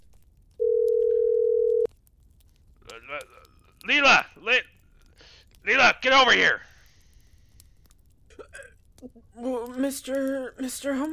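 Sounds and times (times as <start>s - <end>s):
telephone dial tone: 0.6s - 1.9s
speech: 3.1s - 4.7s, 5.6s - 6.7s, 9.0s - 11.1s.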